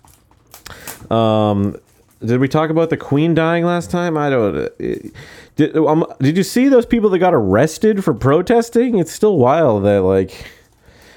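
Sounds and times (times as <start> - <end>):
deck of playing cards rustling as it is opened and handled: 0.0 - 7.0
speech: 1.1 - 10.6.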